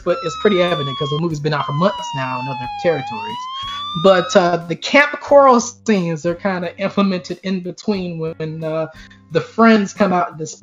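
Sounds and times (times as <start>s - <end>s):
siren wailing: 0.0s - 4.6s
speech: 0.0s - 10.6s.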